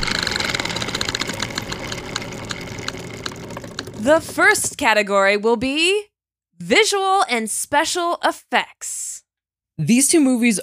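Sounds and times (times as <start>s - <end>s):
spinning prize wheel clicking: 0.0s - 4.8s
speech: 4.0s - 9.1s, 9.8s - 10.6s.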